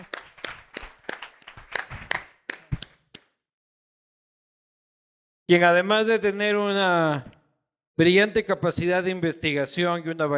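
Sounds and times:
audience applause: 0.0 - 2.9
speech: 5.5 - 7.4, 8.0 - 10.3.

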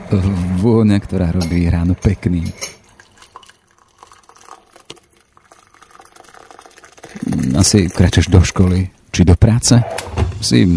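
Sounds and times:
speech: 0.1 - 2.8, 7.6 - 10.7
water bubbling at a rolling boil for morning coffee: 1.9 - 8.9.

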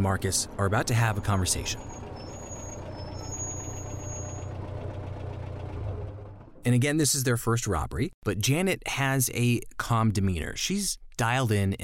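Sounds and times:
speech: 0.0 - 2.0, 6.6 - 11.8
car engine idling heard muffled from inside the car: 0.0 - 6.7.

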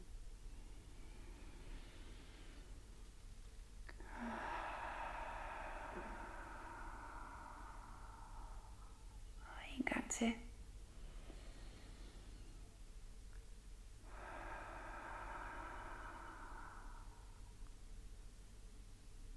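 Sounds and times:
slow deep breathing during a guided breathing exercise: 0.0 - 9.7, 10.6 - 13.0, 13.8 - 19.0
speech: 10.2 - 10.5.

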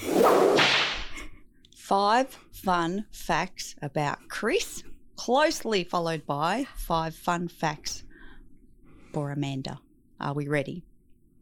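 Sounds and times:
whip crack sound effect: 0.1 - 1.2
speech: 1.9 - 8.0, 9.1 - 10.9.

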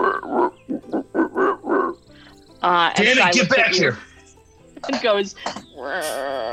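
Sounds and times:
person imitating frog or toad croaks: 0.0 - 2.0, 5.6 - 6.5
speech: 2.6 - 4.1, 4.8 - 6.5.

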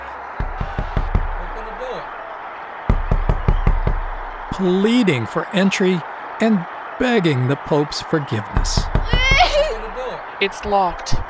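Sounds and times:
heavy knocking on a door: 0.4 - 1.4, 2.9 - 4.4, 8.6 - 9.6
speech: 4.6 - 9.0, 10.4 - 11.2
laughter: 4.6 - 10.6.

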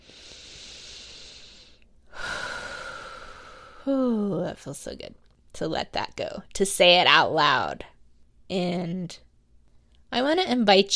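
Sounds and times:
deep slow breath drawn in: 0.0 - 3.9
speech: 3.9 - 7.9, 8.5 - 9.2, 10.1 - 10.9.

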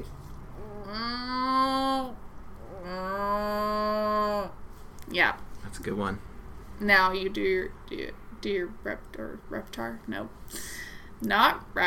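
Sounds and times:
person imitating a cow mooing: 0.6 - 4.6
speech: 5.2 - 11.8.

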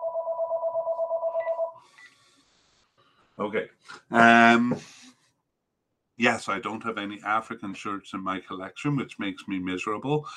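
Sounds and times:
mobile phone ringing with electronic trill: 0.0 - 2.2
speech: 3.4 - 5.0, 6.2 - 10.3.

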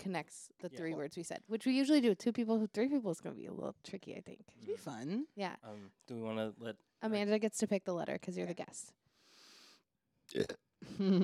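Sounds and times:
speech: 0.0 - 9.0, 10.3 - 11.2
loud burp into the microphone: 10.3 - 10.6.

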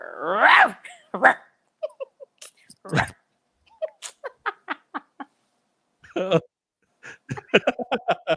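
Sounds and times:
person imitating a small dog's bark with yips and yaps: 0.0 - 1.4, 2.8 - 3.2
person laughing: 1.8 - 3.1, 3.8 - 5.3, 6.1 - 6.5, 7.1 - 8.3.

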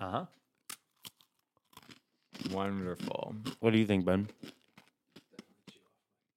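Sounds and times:
speech: 0.1 - 0.4, 2.6 - 4.6
crunchy pretzels being chewed: 0.3 - 6.0.

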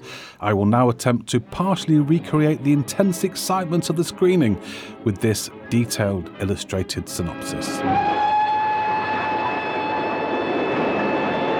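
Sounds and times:
speech: 0.4 - 8.4
old steam train whistle: 7.6 - 11.5.

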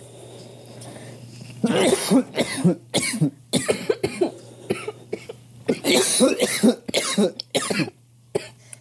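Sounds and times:
low steady hum: 0.0 - 8.7
speech: 1.6 - 3.4
several people coughing hard: 1.6 - 8.6.

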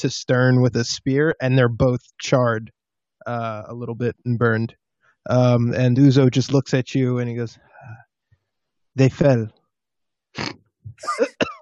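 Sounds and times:
speech: 0.0 - 8.0, 9.0 - 9.6, 10.4 - 11.5
man giving a sharp harsh cough: 10.4 - 11.5
sputtering hacking vocal noises: 10.4 - 11.5.

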